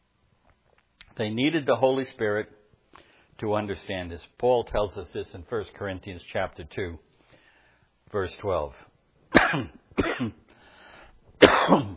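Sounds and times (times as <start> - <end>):
speech: 1.2 - 2.6, 3.4 - 7.1, 8.1 - 10.4, 11.7 - 11.9
coughing and throat clearing: 9.3 - 10.5, 11.4 - 11.9.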